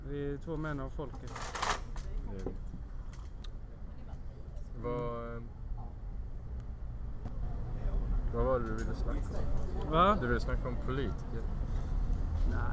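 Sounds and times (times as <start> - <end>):
low street traffic rumble: 0.0 - 12.7
speech: 0.1 - 1.6, 4.8 - 5.6, 8.3 - 11.6, 12.5 - 12.7
scattered clicks and clatter: 1.1 - 2.2
cars passing on a city street: 6.3 - 12.7.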